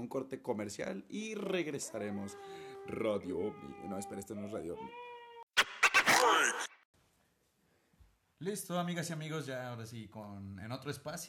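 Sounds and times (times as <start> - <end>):
speech: 0.0 - 5.1, 8.4 - 11.2
baby crying in short strained wails: 1.8 - 6.7.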